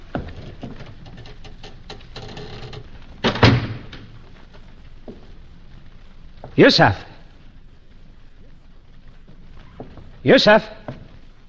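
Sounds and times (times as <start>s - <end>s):
faint rustle: 0.0s - 11.4s
heavy door thudding shut: 3.2s - 4.0s
speech: 6.6s - 7.1s, 10.2s - 10.8s.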